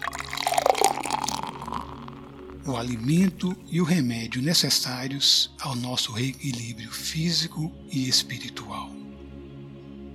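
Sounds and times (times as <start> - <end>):
water pouring into a drinking glass: 0.0 - 3.1
speech: 2.6 - 9.0.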